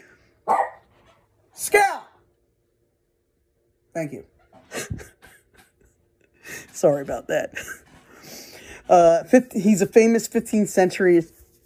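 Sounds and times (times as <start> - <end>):
dog barking: 0.4 - 0.9
speech: 1.6 - 2.0, 4.0 - 5.1, 6.8 - 7.8, 8.9 - 11.4.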